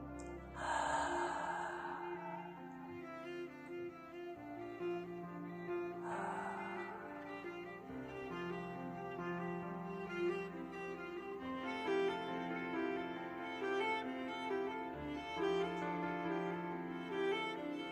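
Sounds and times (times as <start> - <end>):
soft musical drone: 0.0 - 17.8
person exhaling during a guided breathing exercise: 0.2 - 3.4, 6.0 - 8.0.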